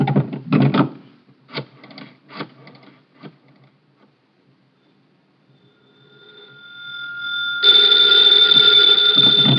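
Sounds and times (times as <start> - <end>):
wooden knocks and clatters: 0.0 - 1.0
faint tone: 4.8 - 9.5
loud telephone bell ringing: 5.6 - 9.5.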